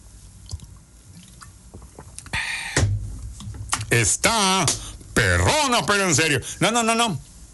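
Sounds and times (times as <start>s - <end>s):
person drinking hibiscus water from a one-litre bottle: 0.5s - 3.9s
heavy gulp of hibiscus water: 1.7s - 3.1s
speech: 3.9s - 7.3s.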